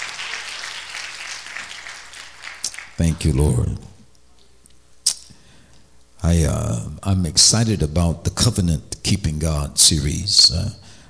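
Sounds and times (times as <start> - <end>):
congregation clapping hands during a church worship service: 0.0 - 3.4
speech: 3.0 - 3.9, 6.2 - 10.8.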